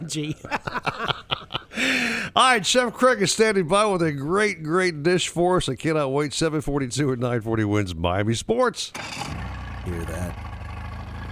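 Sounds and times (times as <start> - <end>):
laughter: 0.0 - 1.9
speech: 0.1 - 1.2, 1.8 - 10.5
boat engine idling: 10.2 - 11.2.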